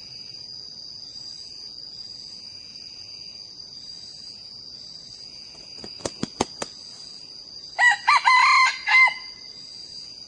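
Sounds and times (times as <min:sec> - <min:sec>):
steady high insect trill: 0:00.0 - 0:10.2
young male red junglefowl crowing: 0:07.8 - 0:09.4.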